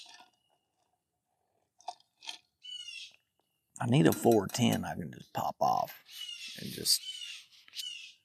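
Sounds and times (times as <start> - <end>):
bird squawking outdoors on the water: 2.6 - 3.2, 6.0 - 8.2
speech: 3.8 - 7.2.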